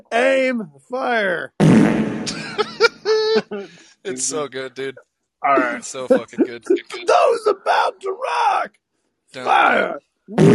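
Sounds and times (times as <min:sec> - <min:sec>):
speech: 0:00.1 - 0:02.8, 0:03.4 - 0:10.5
fart echoing in an opera house: 0:01.6 - 0:02.4
laughter: 0:02.3 - 0:08.6.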